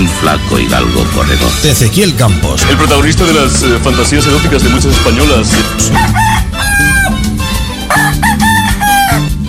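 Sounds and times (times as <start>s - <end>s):
speech: 0.1s - 7.0s
rooster crowing: 5.9s - 7.3s, 7.9s - 9.3s.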